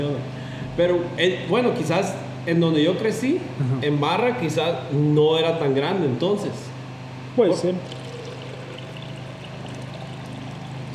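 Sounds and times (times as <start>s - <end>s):
speech: 0.0s - 6.7s, 7.4s - 8.0s
person drinking water: 7.9s - 10.9s.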